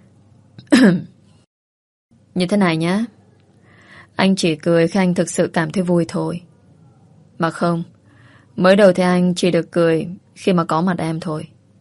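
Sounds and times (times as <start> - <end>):
throat clearing: 0.6 - 1.2
speech: 0.8 - 1.1, 2.4 - 3.2, 4.2 - 6.5, 7.4 - 8.0, 8.6 - 11.5.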